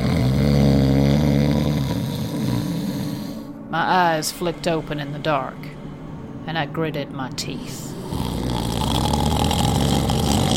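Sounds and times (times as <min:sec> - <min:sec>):
man snoring loudly on a cot in a tent: 0:00.0 - 0:03.5, 0:07.9 - 0:10.5
speech: 0:03.8 - 0:05.8, 0:06.4 - 0:08.2.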